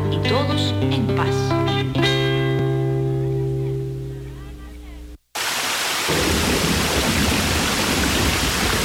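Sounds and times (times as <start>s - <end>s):
speech: 0.3s - 2.1s
sustained musical tone: 2.6s - 5.2s
heavy winter rain falling: 5.4s - 8.8s.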